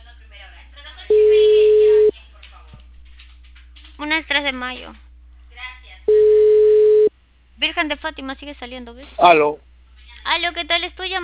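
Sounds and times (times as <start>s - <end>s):
faint low hum: 0.0s - 11.2s
telephone line tone while a call is placed: 1.1s - 2.1s, 6.1s - 7.1s
speech: 4.2s - 5.0s, 7.7s - 11.2s.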